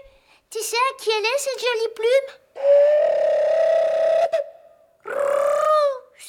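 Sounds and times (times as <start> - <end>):
speech: 0.8 - 3.4
cuckoo call: 2.6 - 5.9.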